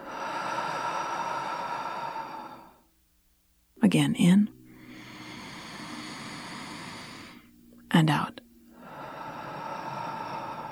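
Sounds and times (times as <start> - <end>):
slow deep breath in and out during a guided relaxation exercise: 0.0 - 2.9, 4.7 - 7.6, 8.6 - 10.7
speech: 3.9 - 4.6, 8.0 - 8.4.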